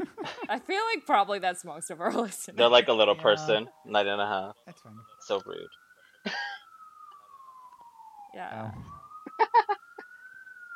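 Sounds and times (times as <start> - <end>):
laughter: 0.0 - 0.6
speech: 0.5 - 6.5, 8.4 - 9.7
emergency vehicle siren wailing: 2.6 - 10.7.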